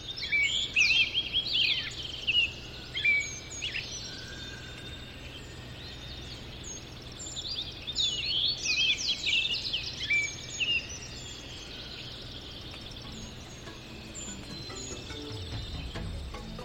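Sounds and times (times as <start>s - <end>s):
dawn chorus of many birds singing: 0.0s - 16.6s
steady outdoor hush: 11.4s - 16.6s.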